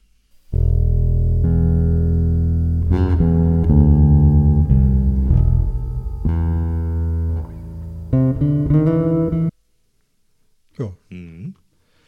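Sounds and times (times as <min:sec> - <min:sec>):
bass line with reverb playing buzzy low notes: 0:00.5 - 0:09.5.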